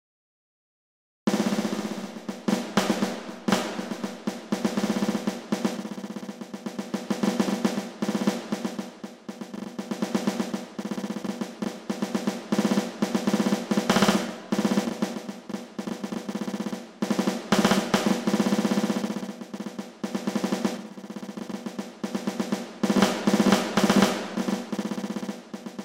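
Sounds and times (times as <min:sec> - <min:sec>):
snare drum playing: 0:01.3 - 0:25.8.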